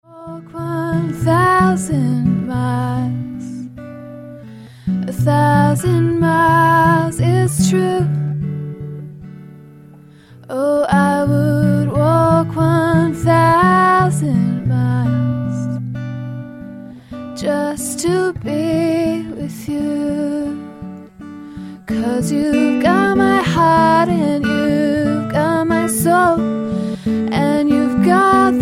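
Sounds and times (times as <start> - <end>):
woman singing with acoustic guitar: 0.0 - 28.6.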